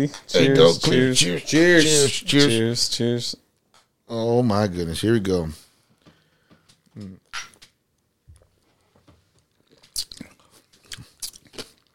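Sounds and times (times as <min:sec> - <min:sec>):
speech: 0:00.0 - 0:03.4, 0:04.1 - 0:05.6, 0:07.0 - 0:07.5
crisp bites and wet chewing on fresh cucumber: 0:09.5 - 0:11.9.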